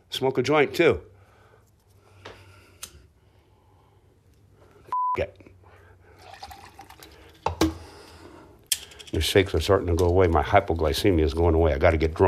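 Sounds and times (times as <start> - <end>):
speech: 0.2 - 1.1, 5.2 - 5.5, 9.2 - 12.2
drink spilling and splashing onto a new phone: 6.2 - 7.3.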